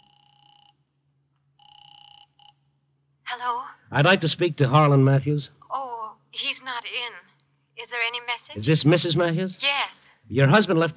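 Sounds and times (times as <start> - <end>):
telephone ringing on the line in electronic bursts: 0.0 - 0.8, 1.6 - 2.7
low steady hum: 0.0 - 10.9
speech: 3.3 - 5.6, 6.4 - 10.9.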